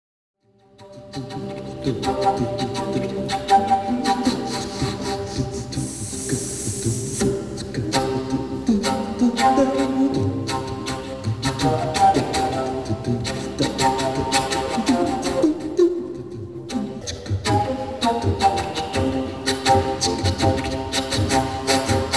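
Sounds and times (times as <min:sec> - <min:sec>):
whispery flute: 0:00.8 - 0:22.1.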